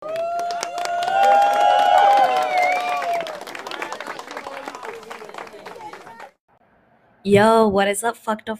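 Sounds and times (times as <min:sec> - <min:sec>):
whoops and cheering voices: 0:00.0 - 0:05.0
crowd applauding: 0:00.0 - 0:06.4
speech: 0:07.3 - 0:08.5.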